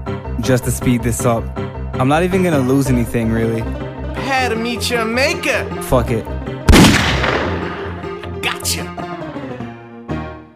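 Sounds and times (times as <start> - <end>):
speech: 0.1 - 6.4, 8.6 - 9.0
video game gunshot: 6.7 - 8.0.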